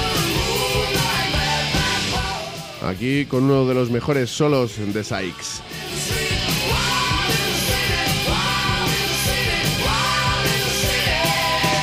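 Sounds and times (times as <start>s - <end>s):
rock singer screaming: 0.0s - 2.8s, 5.3s - 11.8s
bass: 0.0s - 11.8s
distorted guitar: 0.0s - 11.8s
speech: 2.9s - 6.0s.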